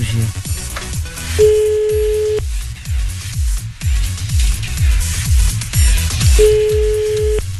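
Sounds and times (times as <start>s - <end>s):
loud rhythmic musical backing with pulsing bass: 0.0s - 7.5s
telephone ringback tone on a call: 1.4s - 2.4s, 6.4s - 7.5s.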